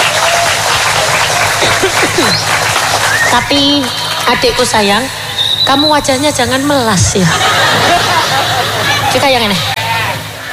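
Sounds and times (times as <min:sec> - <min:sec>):
laughter: 0:00.0 - 0:05.4, 0:06.7 - 0:10.2
group applauding and clapping hands: 0:00.0 - 0:05.7
speech: 0:03.3 - 0:08.1, 0:09.2 - 0:09.7.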